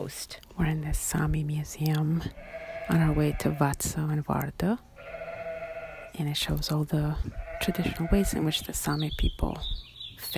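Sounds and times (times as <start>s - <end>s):
speech: 0.0s - 4.9s, 6.2s - 10.3s
sheep bleating in a drawn-out wavering cry: 2.4s - 3.8s, 5.0s - 6.2s, 7.3s - 8.5s.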